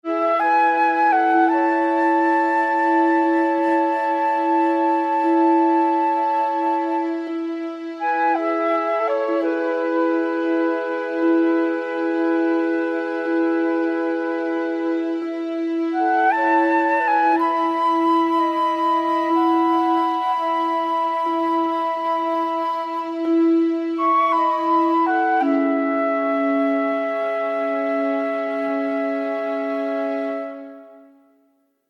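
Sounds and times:
flute intro: 0.0s - 31.6s.

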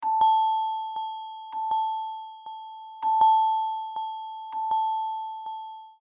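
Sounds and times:
calm phone ringtone: 0.0s - 6.1s.

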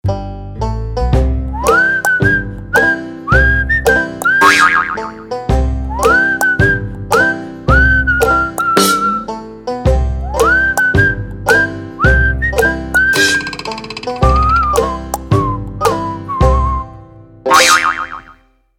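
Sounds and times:
Sony Ericsson banjo ringtone: 1.2s - 16.8s, 17.5s - 18.4s.

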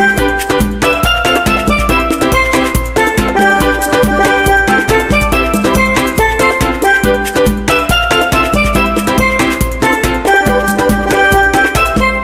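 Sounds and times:
calypso ringtone on a BlackBerry 9000 Bold: 0.2s - 9.5s, 10.3s - 12.1s.

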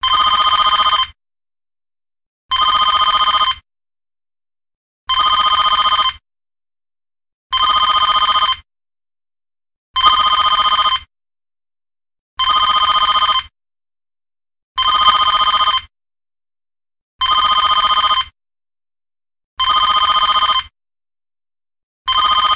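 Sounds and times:
3D phone ringtone: 0.0s - 1.2s, 2.5s - 3.6s, 5.1s - 6.2s, 7.5s - 8.7s, 10.0s - 11.1s, 12.4s - 13.5s, 14.8s - 15.9s, 17.2s - 18.4s, 19.6s - 20.7s, 22.1s - 22.5s.

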